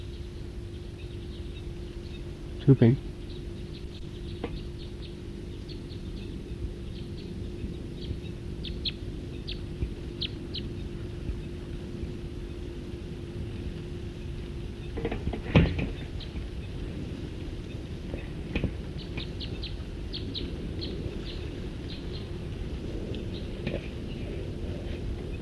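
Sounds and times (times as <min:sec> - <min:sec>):
bird calling in flight: 0:00.0 - 0:12.8, 0:14.1 - 0:17.0, 0:18.9 - 0:22.4
low noise: 0:00.0 - 0:25.4
speech: 0:02.6 - 0:03.1.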